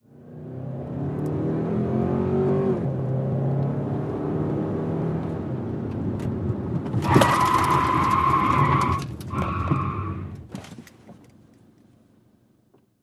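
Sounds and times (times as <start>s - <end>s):
sedan accelerating heard from interior: 0.1s - 10.2s
sedan tyres skidding: 6.8s - 10.6s.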